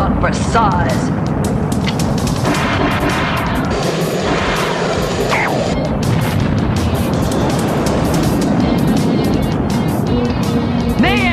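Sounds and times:
speech: 0.6 - 1.1
loud dense rushing roar of engines and blasts: 1.0 - 11.3
missiles streaking past: 2.4 - 9.2.

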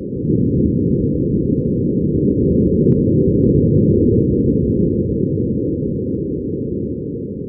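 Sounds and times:
Martian wind buffeting a rover microphone: 0.0 - 7.4.

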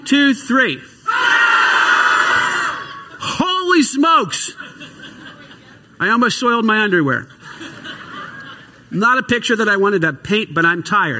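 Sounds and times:
speech: 0.1 - 1.0, 3.8 - 5.1, 6.0 - 7.4, 8.9 - 11.1
standing audience yelling together on cue: 1.1 - 3.2
laughter: 4.3 - 6.0, 7.2 - 9.0.

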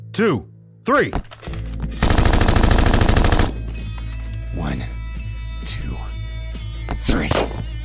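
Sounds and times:
speech: 0.2 - 1.3, 7.0 - 7.5
automatic gunfire: 2.0 - 3.6.

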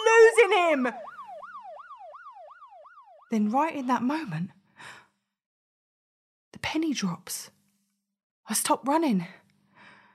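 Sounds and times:
police car siren wailing in a rapid repeating whoop: 0.0 - 3.3
speech: 0.4 - 1.1, 3.3 - 5.0, 6.5 - 7.6, 8.5 - 9.4.

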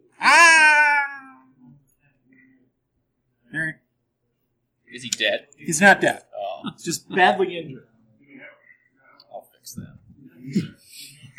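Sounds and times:
human voice imitating a cat meow: 0.2 - 1.6
speech: 5.0 - 7.9, 9.6 - 11.2.

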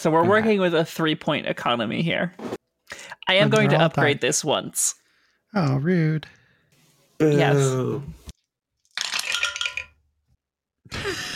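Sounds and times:
speech: 0.0 - 2.6, 3.3 - 6.4, 7.2 - 8.2
dice including a red die clattering across a hard surface: 8.9 - 10.0.

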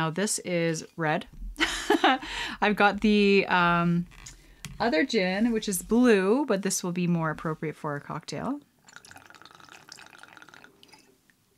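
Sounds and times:
speech: 0.0 - 8.7
red elderflower gin pouring into a small measure: 8.8 - 11.2
faint drips of gin: 8.8 - 11.4.

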